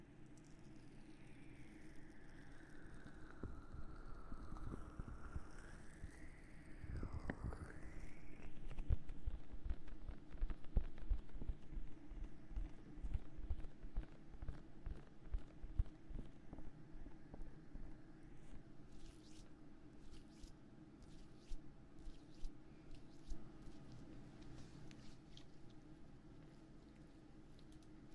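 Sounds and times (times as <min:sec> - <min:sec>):
low steady hum: 0:00.0 - 0:28.1
dense irregular crackles and taps: 0:08.4 - 0:17.6, 0:22.2 - 0:28.1
soft squishy rubbing of ear massage: 0:18.4 - 0:28.1.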